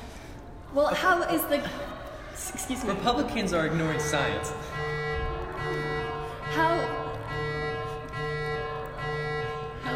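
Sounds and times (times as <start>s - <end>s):
speech: 0.7s - 5.0s
comedic electronic alarm tone sound effect: 3.4s - 9.9s.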